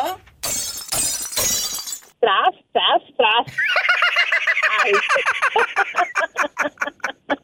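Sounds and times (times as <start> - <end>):
old cup thrown and shattering on the floor: 0.4 - 2.2
laughter: 3.5 - 7.4.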